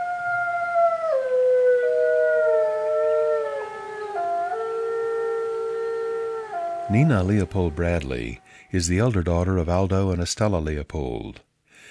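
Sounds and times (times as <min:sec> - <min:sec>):
two wolves howling: 0:00.0 - 0:08.7
speech: 0:06.9 - 0:11.5.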